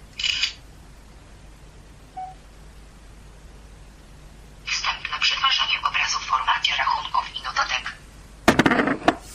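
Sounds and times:
quiet hiss: 0:00.0 - 0:08.5
phone camera shutter: 0:00.2 - 0:00.6
short soft beep: 0:02.2 - 0:02.4.

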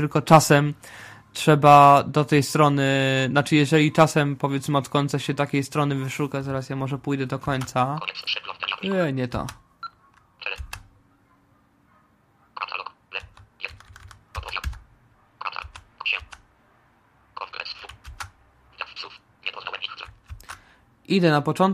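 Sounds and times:
speech: 0:00.0 - 0:09.6, 0:21.1 - 0:21.7
computer keyboard keys including arrow keys being pressed: 0:09.3 - 0:10.9, 0:13.2 - 0:14.9, 0:15.5 - 0:16.4, 0:17.8 - 0:18.4, 0:20.0 - 0:20.6.

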